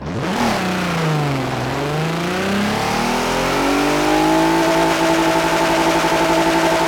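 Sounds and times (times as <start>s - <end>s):
vehicles: 0.0s - 6.8s.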